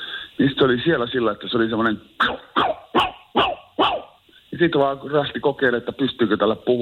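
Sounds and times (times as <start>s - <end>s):
speech: 0.4s - 2.6s, 4.6s - 6.8s
person imitating shrill yappy small dog barks: 2.2s - 4.2s.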